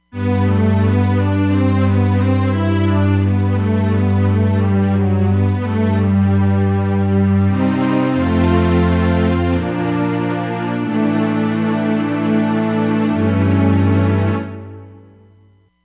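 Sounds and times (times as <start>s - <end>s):
two-way synth section on a Roland Fantom XR: 0.1s - 15.4s.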